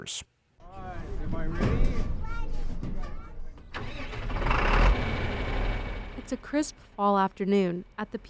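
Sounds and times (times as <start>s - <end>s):
speech: 0.0s - 0.3s, 1.0s - 2.2s, 6.3s - 8.2s
tractor engine starting on a farm: 3.7s - 7.0s.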